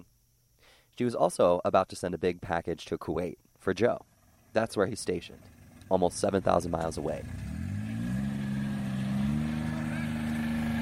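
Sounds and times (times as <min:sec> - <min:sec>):
speech: 0:01.0 - 0:07.5
four-wheeler engine revving while driving through mud: 0:05.3 - 0:10.8.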